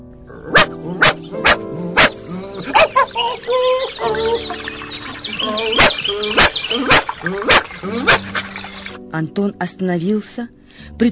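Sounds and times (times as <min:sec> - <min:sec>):
birds chirping: 0:00.4 - 0:09.0
small dog barking angrily: 0:00.5 - 0:03.1, 0:05.8 - 0:08.4
speech: 0:05.5 - 0:08.2, 0:09.2 - 0:11.1.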